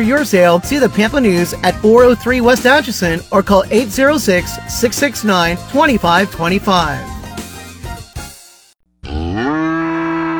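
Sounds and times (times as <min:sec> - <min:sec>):
speech: 0:00.0 - 0:07.2
cow mooing: 0:09.0 - 0:10.3.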